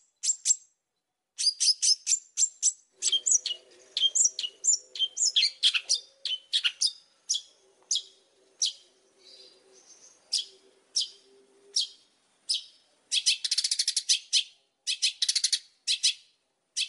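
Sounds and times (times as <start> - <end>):
Oriental magpie-robin whistled song: 0.1 - 0.7, 1.4 - 16.8
faint low hum: 2.9 - 13.2.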